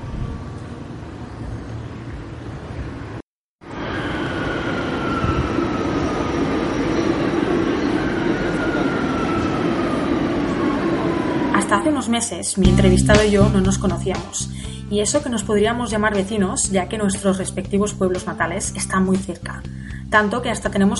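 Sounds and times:
metro train ride rumbling with a high whine: 0:00.0 - 0:14.2
speech: 0:12.0 - 0:20.9.

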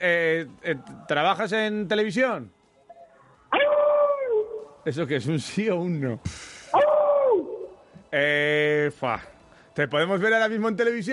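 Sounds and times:
speech: 0:00.0 - 0:02.6, 0:04.8 - 0:06.8, 0:08.1 - 0:11.1
dog howling: 0:03.5 - 0:04.7, 0:06.8 - 0:07.8.

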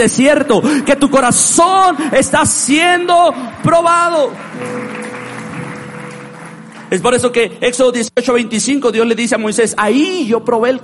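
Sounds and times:
speech: 0:00.0 - 0:05.0, 0:06.9 - 0:10.8
crowd applauding: 0:02.5 - 0:07.8.

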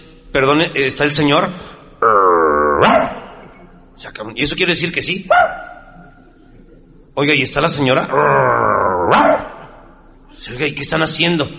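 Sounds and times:
speech: 0:00.3 - 0:03.0, 0:04.1 - 0:05.7, 0:07.2 - 0:09.5, 0:10.4 - 0:11.5
dog growling and yelping bark: 0:02.8 - 0:03.3, 0:05.3 - 0:06.0, 0:09.1 - 0:09.7.

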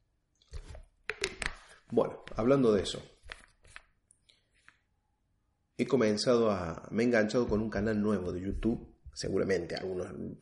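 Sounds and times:
sharp little clicks or crinkles of plastic bottle: 0:01.0 - 0:01.6
speech: 0:01.9 - 0:03.1, 0:05.8 - 0:10.4.

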